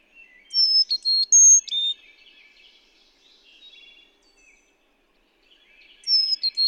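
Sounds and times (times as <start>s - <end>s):
Carolina chickadee song: 0.3s - 2.0s, 6.1s - 6.6s.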